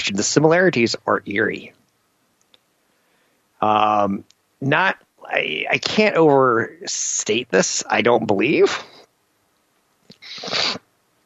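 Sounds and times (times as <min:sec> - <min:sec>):
speech: 0:00.0 - 0:01.8, 0:03.6 - 0:09.0, 0:10.4 - 0:10.8
sneeze: 0:10.2 - 0:10.9.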